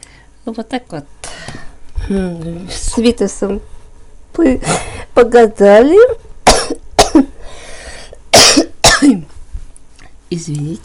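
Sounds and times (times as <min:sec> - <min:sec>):
speech: 0:00.4 - 0:01.2, 0:02.1 - 0:03.7, 0:04.4 - 0:06.2, 0:10.3 - 0:10.8
person coughing harshly: 0:06.5 - 0:07.3, 0:08.3 - 0:09.2.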